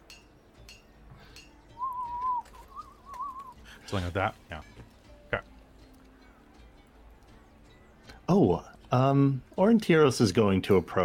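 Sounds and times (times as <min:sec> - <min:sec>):
person whistling a tone imitating an Aztec death whistle: 0:01.7 - 0:03.7
speech: 0:03.9 - 0:04.8, 0:08.4 - 0:11.0.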